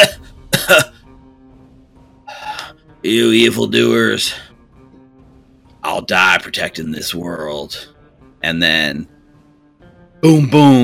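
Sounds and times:
person imitating a character coughing up sap: 0:00.0 - 0:00.9
speech: 0:03.0 - 0:04.5, 0:06.0 - 0:09.1, 0:10.2 - 0:10.8.

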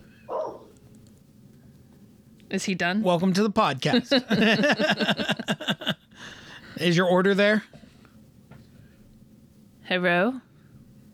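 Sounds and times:
low hum: 0:00.0 - 0:11.1
dog barking: 0:00.3 - 0:00.7
speech: 0:02.5 - 0:06.0, 0:06.8 - 0:07.8, 0:09.9 - 0:10.5
laughter: 0:03.9 - 0:06.0.

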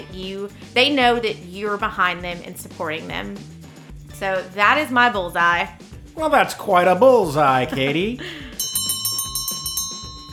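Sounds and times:
speech: 0:00.1 - 0:03.6, 0:04.2 - 0:08.5
laughter: 0:06.2 - 0:08.6
closing bell ringing: 0:07.8 - 0:10.3.

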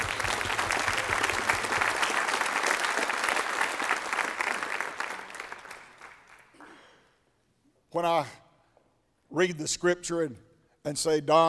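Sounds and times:
audience applauding: 0:00.0 - 0:06.8
speech: 0:08.0 - 0:08.4, 0:09.3 - 0:11.4.

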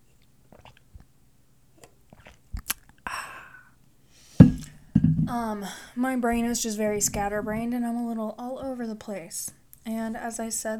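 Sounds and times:
wet gulp: 0:00.2 - 0:01.2, 0:01.8 - 0:03.1, 0:04.3 - 0:05.6
person sipping coffee: 0:00.4 - 0:01.1, 0:01.8 - 0:03.7
thump: 0:04.4 - 0:05.4
speech: 0:05.3 - 0:10.7.

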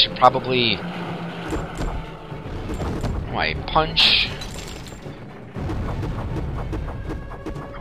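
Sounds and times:
speech: 0:00.0 - 0:01.8, 0:02.7 - 0:04.4
heavy low rumble in a video game: 0:00.0 - 0:07.8
rattling mechanical impacts of a door smashed open in a video game: 0:01.3 - 0:07.0.

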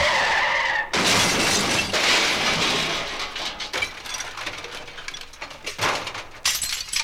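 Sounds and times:
loud crash of breaking glass in a car crash: 0:00.9 - 0:07.0
glass shards tinkling and scattering: 0:06.4 - 0:07.0.

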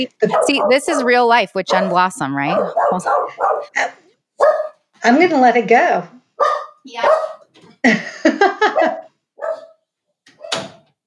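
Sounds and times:
speech: 0:00.0 - 0:09.6
dog barking: 0:00.2 - 0:01.1, 0:01.7 - 0:04.8, 0:06.4 - 0:07.5, 0:08.7 - 0:09.8
laughter: 0:07.8 - 0:09.1.

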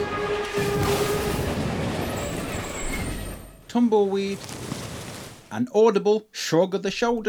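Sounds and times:
high metallic screeching and squealing in a train wreck: 0:00.0 - 0:03.8
loud continuous rumble of rail cars in a train wreck: 0:00.0 - 0:05.5
speech: 0:03.7 - 0:04.7, 0:05.5 - 0:07.2.

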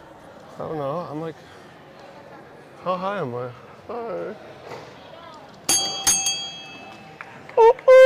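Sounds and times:
faint murmur: 0:00.0 - 0:08.0
speech: 0:00.6 - 0:01.6, 0:02.8 - 0:04.9
bell being struck: 0:05.7 - 0:07.2.

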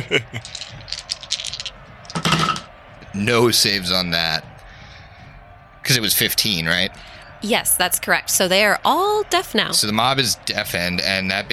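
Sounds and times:
speech: 0:00.0 - 0:00.7, 0:03.2 - 0:04.5, 0:05.9 - 0:11.5
laughter: 0:00.0 - 0:01.6
dice rattling and tumbling across a surface: 0:00.4 - 0:02.7.

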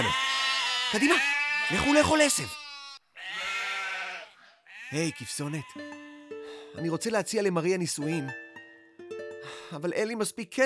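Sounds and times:
sheep bleating: 0:00.0 - 0:06.4
speech: 0:00.9 - 0:02.6, 0:04.9 - 0:06.1, 0:06.7 - 0:08.4, 0:09.4 - 0:10.6.

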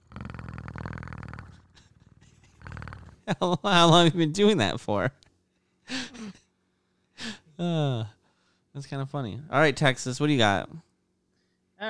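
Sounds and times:
man imitating a cat's purr: 0:00.0 - 0:03.5, 0:07.6 - 0:08.2
speech: 0:03.3 - 0:05.2, 0:07.6 - 0:08.2, 0:08.8 - 0:10.9.

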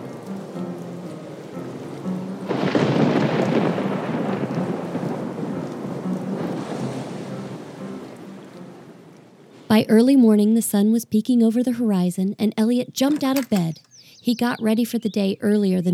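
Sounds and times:
steady rain hissing: 0:00.0 - 0:09.7
deep rolling rumble of thunder: 0:02.5 - 0:07.2
speech: 0:09.7 - 0:15.9.

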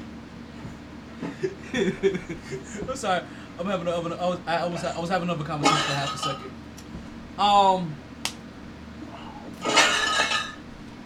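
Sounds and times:
laughter: 0:01.2 - 0:03.0
speech: 0:01.4 - 0:06.7, 0:07.4 - 0:08.0
dishes clinking while being washed: 0:05.6 - 0:06.5, 0:09.6 - 0:10.6.

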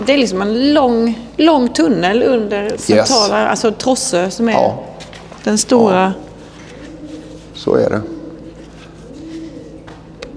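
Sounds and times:
speech: 0:00.0 - 0:06.2, 0:07.6 - 0:08.1
pigeons cooing in a tunnel: 0:00.0 - 0:10.3
steady hum: 0:00.0 - 0:10.3.

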